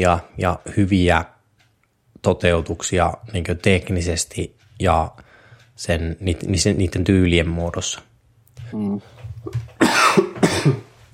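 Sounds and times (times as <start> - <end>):
speech: 0.0 - 1.4, 2.2 - 5.2, 5.8 - 8.1, 8.7 - 10.9
harsh broadband coughs: 9.8 - 11.0.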